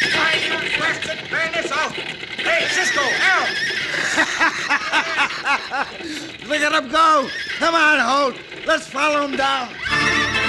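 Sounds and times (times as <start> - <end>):
horses neighing after being pelted with rocks: 0.0 - 10.4
laughter: 2.6 - 6.4
speech: 5.8 - 10.0.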